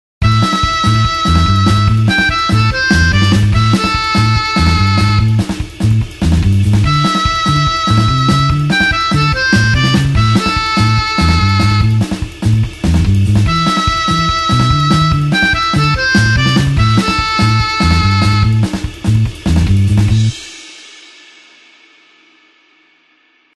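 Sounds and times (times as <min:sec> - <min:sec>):
blues harp in A with 8beat rhythm: 0:00.2 - 0:20.3.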